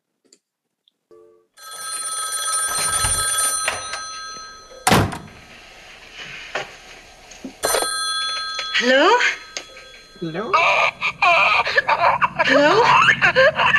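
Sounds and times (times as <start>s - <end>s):
telephone bell ringing on a played back recorded phone call: 1.2s - 5.7s, 7.6s - 11.6s
speech: 8.8s - 9.4s, 10.2s - 13.7s
laughter: 10.4s - 13.7s.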